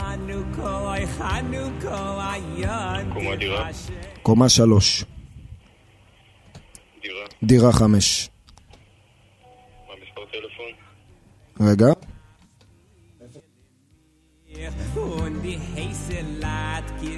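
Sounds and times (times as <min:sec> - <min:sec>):
speech: 0:01.1 - 0:05.2, 0:07.4 - 0:08.3, 0:11.6 - 0:12.0, 0:15.0 - 0:17.1
telephone ringing in short electronic bursts: 0:09.4 - 0:11.0.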